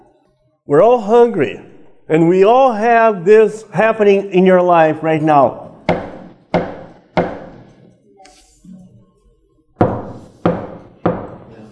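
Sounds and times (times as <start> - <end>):
speech: 0.7 - 6.0
loud resonant knocks on a wooden door: 5.9 - 7.6, 9.8 - 11.5.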